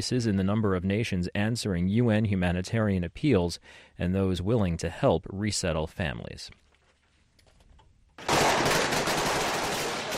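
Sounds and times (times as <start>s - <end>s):
speech: 0.0s - 6.6s
rapid automatic gunfire from security forces fighting militants in Mogadishu at night: 8.2s - 10.1s.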